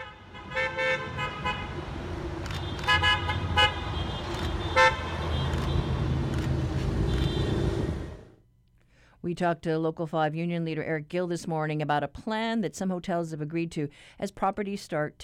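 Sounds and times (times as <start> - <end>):
car horns honking from a caravan of vehicles: 0.0 - 6.3, 6.9 - 8.2
steady rumble of traffic: 0.0 - 8.4
speech: 9.3 - 15.2.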